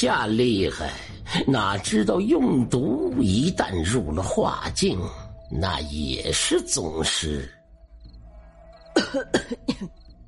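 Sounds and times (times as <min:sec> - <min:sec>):
speech: 0:00.0 - 0:07.6, 0:09.0 - 0:10.0
dry throaty rasping coughs: 0:09.0 - 0:10.0.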